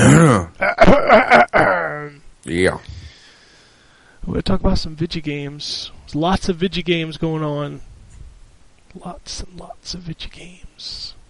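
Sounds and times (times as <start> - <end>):
person clearing throat: 0.0 - 2.1
speech: 2.5 - 3.0, 4.2 - 7.9, 8.9 - 11.2.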